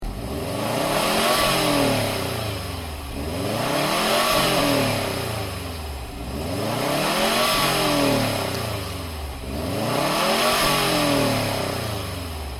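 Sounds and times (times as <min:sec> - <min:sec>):
car engine with cat-back exhaust revving: 0:00.0 - 0:12.5.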